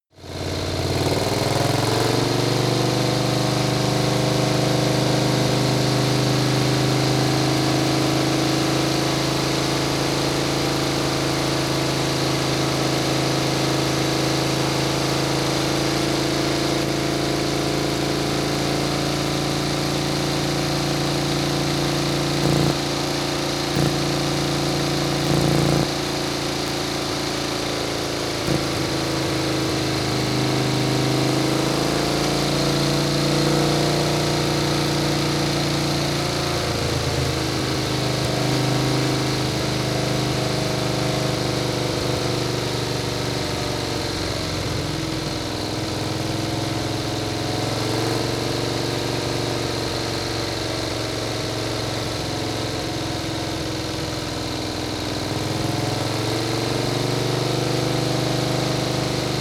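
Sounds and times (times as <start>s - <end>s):
Harley motorcycle driving at medium speed: 0.2s - 59.4s.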